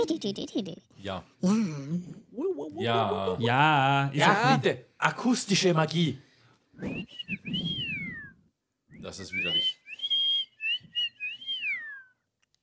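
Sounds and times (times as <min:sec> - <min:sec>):
speech: 0:00.0 - 0:07.7, 0:09.0 - 0:09.8
person whistling a gliding melody imitating a synth sound: 0:06.8 - 0:08.4, 0:09.0 - 0:12.2.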